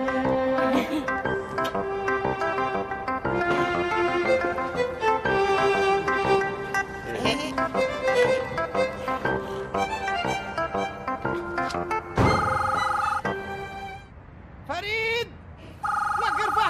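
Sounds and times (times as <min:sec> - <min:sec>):
busy music: 0:00.0 - 0:14.1
telephone ringing in electronic bursts: 0:12.3 - 0:13.3, 0:15.8 - 0:16.6.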